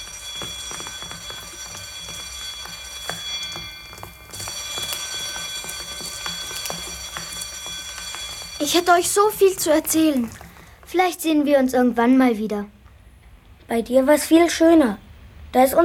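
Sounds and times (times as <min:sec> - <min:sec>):
loud bell ringing with shrill metallic clatter: 0:00.0 - 0:10.5
speech: 0:08.6 - 0:12.8, 0:13.7 - 0:15.8.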